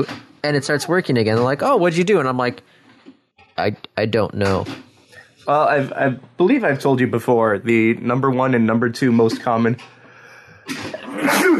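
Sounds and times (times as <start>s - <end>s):
speech: 0.0s - 2.8s, 3.6s - 10.0s, 10.7s - 11.4s
person with a cold sneezing: 10.7s - 11.5s.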